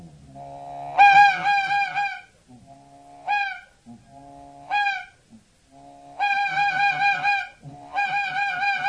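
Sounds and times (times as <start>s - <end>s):
hand-blown goose call imitating honking geese: 0.4s - 2.3s, 3.2s - 5.2s, 5.8s - 8.8s.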